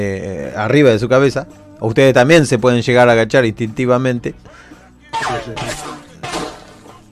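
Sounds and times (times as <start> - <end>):
speech: 0.0 - 5.9
gunshot-like bangs with decay: 5.2 - 6.9.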